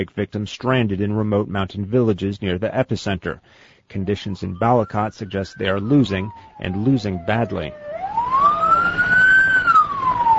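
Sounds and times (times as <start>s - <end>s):
speech: 0.0s - 7.9s
ambulance siren wailing in standstill traffic leaving an earthquake-hit town: 4.0s - 10.3s.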